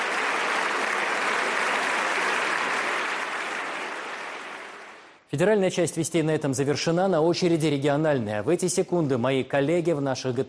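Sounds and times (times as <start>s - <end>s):
sustained applause from French parliament deputies in a standing ovation: 0.0s - 5.3s
speech: 5.3s - 10.4s.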